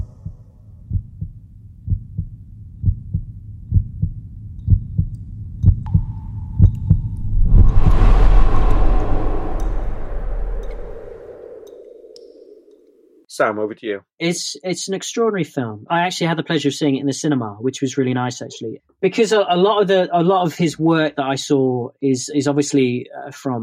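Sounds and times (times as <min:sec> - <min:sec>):
heartbeat thumping heard inside a cave: 0:00.0 - 0:07.1
rush of broad ambient noise: 0:07.2 - 0:12.9
speech: 0:13.4 - 0:23.6.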